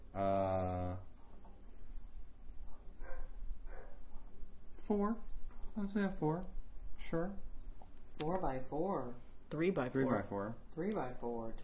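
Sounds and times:
speech: 0:00.2 - 0:00.4, 0:04.9 - 0:07.5, 0:08.2 - 0:11.6
dog barking: 0:03.0 - 0:04.0.

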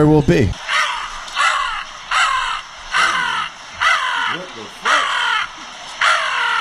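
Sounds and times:
man imitating crow caws: 0:00.7 - 0:06.6.

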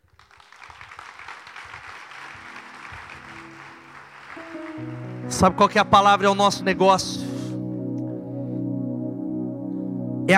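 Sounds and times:
audience applauding: 0:00.0 - 0:06.6
sustained organ or keyboard tones: 0:02.0 - 0:10.3
speech: 0:04.8 - 0:07.2.

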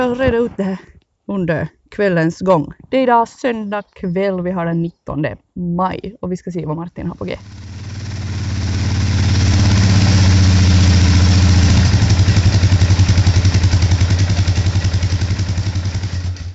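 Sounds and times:
speech: 0:00.0 - 0:07.6
small tractor called a mönke idling: 0:07.2 - 0:16.5.

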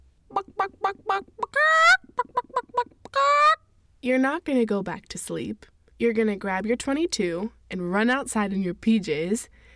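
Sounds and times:
chickens squawking in alarm in a coop at night: 0:00.3 - 0:03.6
speech: 0:04.0 - 0:09.6.

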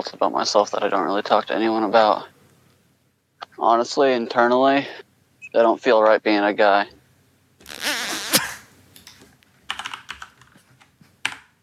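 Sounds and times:
speech: 0:00.0 - 0:02.4, 0:03.6 - 0:07.0
computer keyboard typing: 0:09.7 - 0:11.6.

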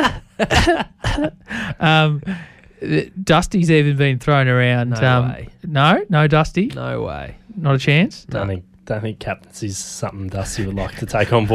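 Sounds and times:
person coughing: 0:00.0 - 0:01.4
speech: 0:00.4 - 0:11.5.

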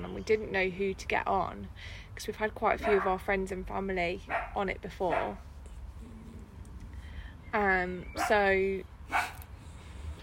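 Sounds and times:
speech: 0:00.2 - 0:05.5, 0:07.5 - 0:09.3
neighbour's dog barking next door: 0:02.8 - 0:03.1, 0:04.3 - 0:05.4, 0:08.2 - 0:08.4, 0:09.1 - 0:09.4.

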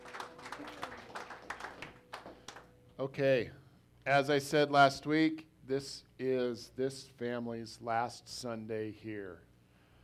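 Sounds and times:
audience applauding: 0:00.0 - 0:02.7
speech: 0:03.0 - 0:09.5.

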